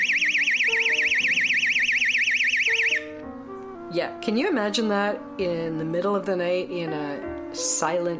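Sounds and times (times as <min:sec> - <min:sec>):
piercing electronic siren from a portable personal alarm: 0:00.0 - 0:03.1
speech: 0:03.9 - 0:08.1.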